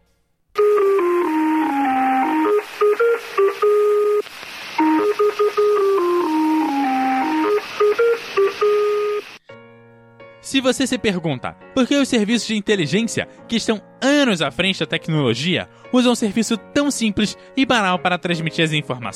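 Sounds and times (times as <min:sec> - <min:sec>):
synthesized numbers station interval signal melody of pure electronic tones: 0:00.6 - 0:09.4
faint radio hiss: 0:01.7 - 0:09.4
speech: 0:10.6 - 0:19.1.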